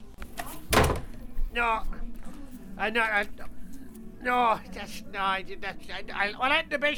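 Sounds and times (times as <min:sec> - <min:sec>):
body bumping into a door: 0:00.7 - 0:01.2
speech: 0:01.6 - 0:02.0, 0:02.8 - 0:03.6, 0:04.2 - 0:06.9.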